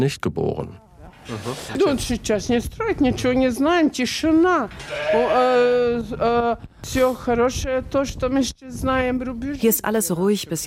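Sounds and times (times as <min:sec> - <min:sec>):
speech: 0:00.0 - 0:10.6
sheep bleating inside a barn: 0:04.8 - 0:05.8.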